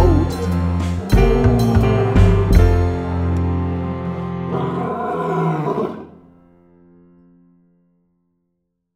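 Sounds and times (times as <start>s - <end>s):
loud deep lion roar: 0.1s - 3.2s, 4.0s - 6.3s.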